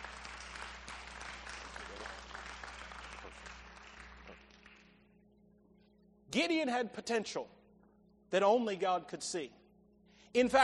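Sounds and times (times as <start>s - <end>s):
room full of people applauding: 0.0s - 5.0s
speech: 6.4s - 7.6s, 8.3s - 9.6s, 10.3s - 10.6s.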